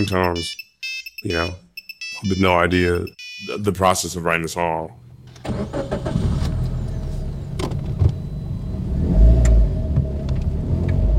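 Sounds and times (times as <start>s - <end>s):
speech: 0.0s - 6.3s
car engine rumble inside a car cabin: 5.0s - 11.1s.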